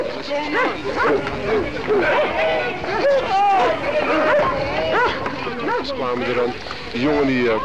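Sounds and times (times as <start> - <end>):
crowd hubbub: 0.0 - 7.6
raised voices: 0.0 - 7.6
speech: 0.3 - 2.9, 5.8 - 7.6
police dog barking and yelping while attacking: 0.5 - 1.2, 4.1 - 5.9.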